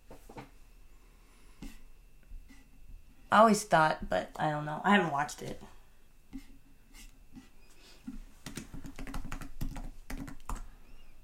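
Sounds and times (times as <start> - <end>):
speech: 3.3 - 5.8
typing on a computer keyboard: 8.4 - 10.7.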